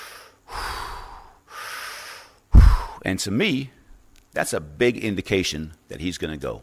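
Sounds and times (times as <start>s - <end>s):
voice imitating loud rasping heavy breathing: 0.0s - 3.1s
speech: 3.0s - 3.8s, 4.4s - 6.6s.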